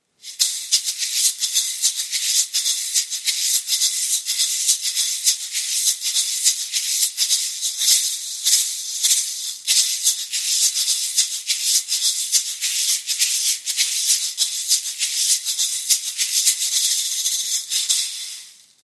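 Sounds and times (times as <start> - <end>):
large marble shaker rattling: 0.0 - 18.8.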